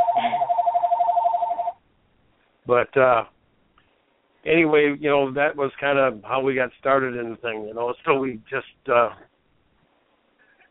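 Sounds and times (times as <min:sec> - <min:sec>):
telephone ringing in a busy office: 0:00.0 - 0:01.8
speech: 0:02.7 - 0:03.3, 0:04.4 - 0:09.3.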